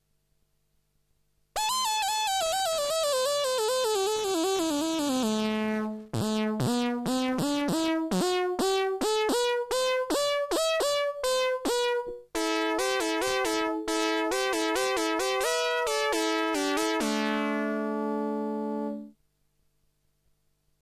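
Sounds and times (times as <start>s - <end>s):
CS-30 synthesizer lead in the style of an Arp Pro-Soloist: 1.6s - 19.1s.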